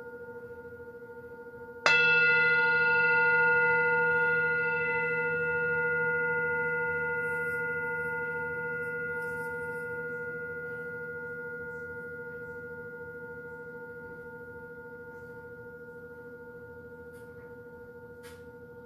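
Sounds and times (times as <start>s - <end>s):
gong struck and ringing: 1.9s - 11.4s.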